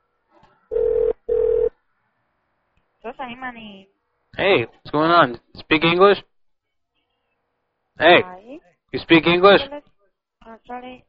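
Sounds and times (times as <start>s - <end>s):
telephone ringback tones through the phone line: 0.7s - 1.7s
speech: 3.1s - 6.3s, 8.0s - 11.0s.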